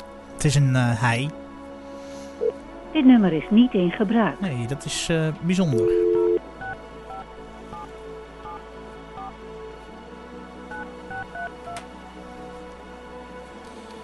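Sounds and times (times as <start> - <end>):
speech: 0.4 - 1.4, 2.9 - 6.0
telephone keypad touch-tone beeps: 5.7 - 7.2.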